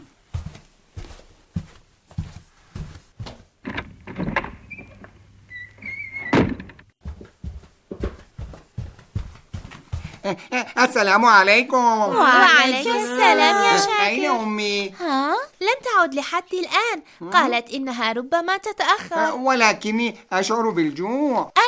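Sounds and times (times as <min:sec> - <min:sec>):
footsteps approaching a door: 0:00.0 - 0:05.2, 0:06.5 - 0:10.4
door squeaking and thunking as it is opened: 0:03.7 - 0:06.9
speech: 0:10.3 - 0:21.6.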